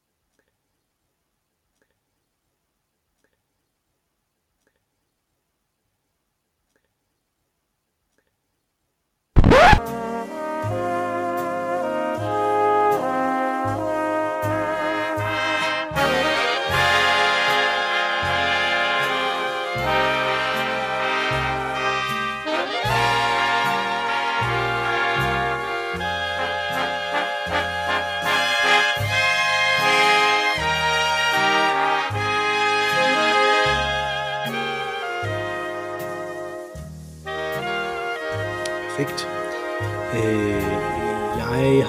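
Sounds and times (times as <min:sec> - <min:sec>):
big band with brass and reeds playing a Christmas carol instrumentally: 0:09.8 - 0:41.8.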